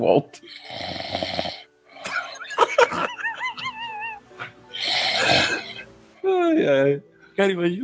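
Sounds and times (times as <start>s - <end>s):
speech: 0.0s - 1.5s, 6.6s - 7.8s
person snoring theatrically: 0.4s - 2.4s, 4.4s - 5.9s
laughter: 2.0s - 4.6s.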